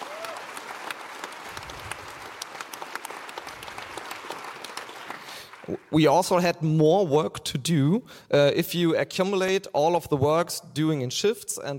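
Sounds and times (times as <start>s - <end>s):
large audience applauding: 0.0s - 6.0s
speech: 5.7s - 11.7s.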